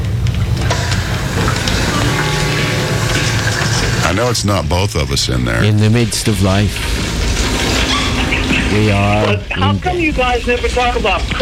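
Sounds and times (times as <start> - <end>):
shower water spraying while a man showers: 0.4 - 4.1, 6.2 - 9.6
speech: 4.2 - 7.3, 8.7 - 11.3.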